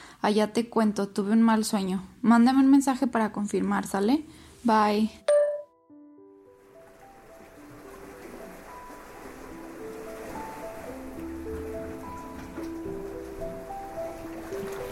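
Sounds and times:
speech: 0:00.2 - 0:05.2
soft sustained musical tones: 0:05.2 - 0:14.8
ocean waves washing against the shore: 0:06.5 - 0:14.8.

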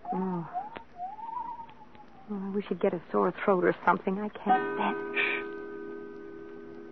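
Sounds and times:
owl hooting outside the house: 0:00.0 - 0:02.4
speech: 0:02.3 - 0:05.3.

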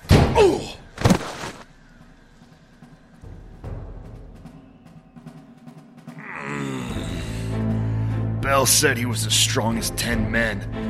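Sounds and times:
man slammed into a wall by a robot security guard: 0:00.0 - 0:01.6
speech: 0:00.4 - 0:00.8, 0:08.6 - 0:10.8
man groaning in pain: 0:06.2 - 0:07.6.

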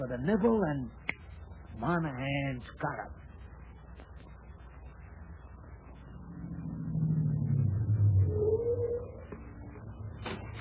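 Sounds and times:
speech: 0:00.0 - 0:01.1, 0:01.8 - 0:03.2
car engine rumbling as the vehicle comes to a halt: 0:05.8 - 0:10.6.

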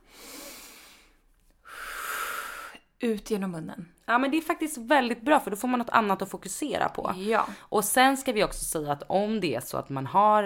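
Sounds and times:
long airy breath in through the nose: 0:00.0 - 0:02.8
speech: 0:03.0 - 0:10.4.

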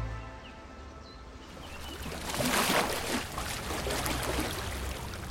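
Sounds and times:
small lake waves lapping and splashing on old granite steps on Lake Como: 0:01.5 - 0:05.2.

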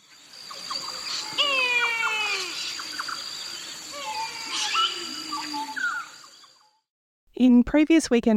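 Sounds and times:
steady outdoor hiss of insects: 0:00.0 - 0:06.8
kite thin wavering whistled calls: 0:01.2 - 0:02.7, 0:03.9 - 0:06.1
speech: 0:07.4 - 0:08.3.

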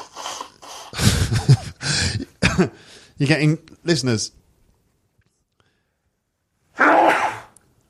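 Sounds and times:
person sniffing: 0:00.0 - 0:01.0
speech: 0:02.6 - 0:04.4
person sneezing: 0:06.8 - 0:07.5.

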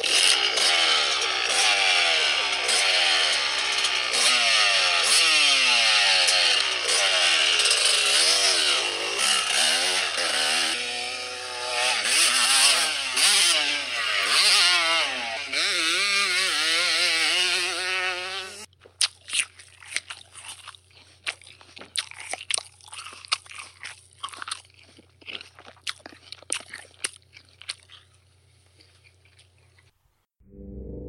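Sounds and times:
two-stroke engine revving: 0:00.0 - 0:18.7.

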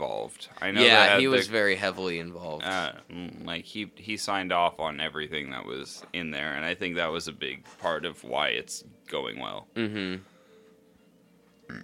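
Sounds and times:
speech: 0:00.0 - 0:10.3
short burp: 0:09.8 - 0:10.2.

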